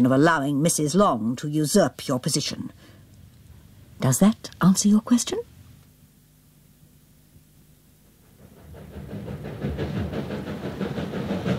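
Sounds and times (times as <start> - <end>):
speech: 0.0 - 3.0, 4.0 - 5.5
low rumbling steam train engine: 8.0 - 11.5
steam train chugging and hissing arriving at station: 8.1 - 11.5.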